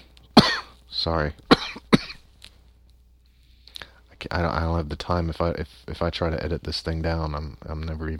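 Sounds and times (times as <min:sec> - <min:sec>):
person with a wheezy chest coughing: 0:00.4 - 0:00.8, 0:01.5 - 0:02.2
speech: 0:01.0 - 0:01.8, 0:04.3 - 0:08.1.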